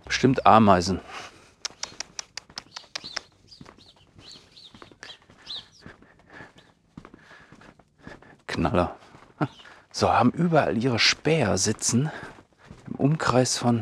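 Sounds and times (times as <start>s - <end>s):
birds perched on a house gutter chirping: 0.0s - 13.7s
speech: 0.1s - 1.3s, 8.6s - 12.4s, 13.0s - 13.7s
quick clicking taps: 1.6s - 3.7s.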